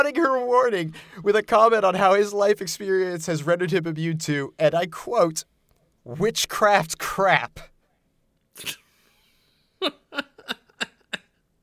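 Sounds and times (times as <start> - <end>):
speech: 0.0 - 7.7, 8.6 - 8.8, 9.8 - 10.6
person sneezing: 8.6 - 9.0
laughter: 9.8 - 11.2.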